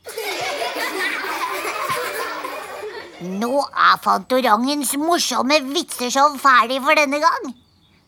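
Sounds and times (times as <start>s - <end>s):
canned laughter played from a laugh button: 0.0s - 3.9s
speech: 3.2s - 7.6s.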